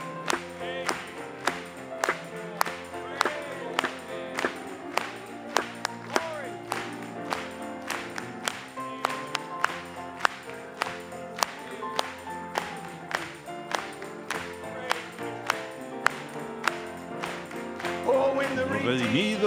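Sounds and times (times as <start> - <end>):
audience clapping together in a steady rhythm: 0.0 - 19.4
music carrying a melody: 0.0 - 19.4
singing voices: 0.0 - 19.4.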